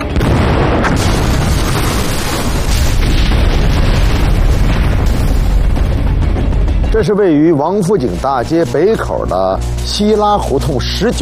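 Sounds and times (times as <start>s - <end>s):
time bombs exploding on the roofs of a courtyard house: 0.1s - 6.7s
speech: 7.0s - 11.2s.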